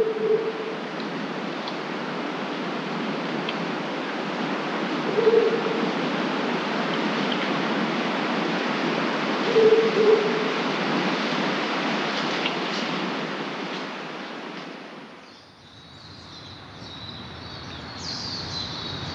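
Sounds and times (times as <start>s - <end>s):
stream rushing: 0.4s - 15.2s
horned owl hooting before dawn: 5.0s - 5.8s, 9.4s - 10.6s.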